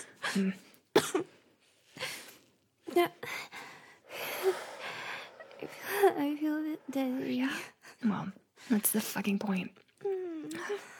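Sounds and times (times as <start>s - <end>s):
speech: 0.4s - 1.2s, 3.0s - 3.4s, 6.2s - 9.9s
person coughing after inhaling smoke: 1.0s - 1.3s
ragged gasping breaths: 3.2s - 7.9s.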